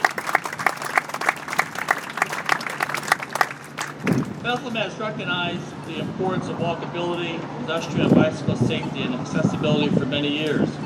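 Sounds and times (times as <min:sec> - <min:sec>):
audience applause: 0:00.0 - 0:04.4
speech: 0:04.4 - 0:10.8.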